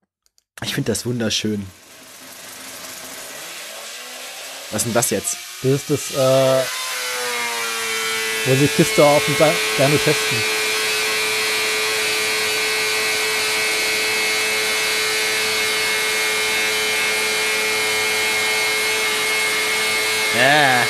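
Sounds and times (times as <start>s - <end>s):
speech: 0.7s - 1.8s, 4.7s - 6.8s, 8.4s - 10.6s, 20.4s - 20.8s
Wankel rotary engine running at high revs on a test bench: 1.7s - 20.8s.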